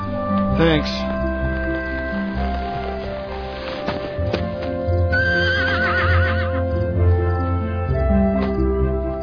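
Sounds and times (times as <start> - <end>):
horse hooves clip-clopping: 0.1 - 9.1
speech: 0.6 - 1.2
stallion neighing and whinnying: 5.1 - 6.7.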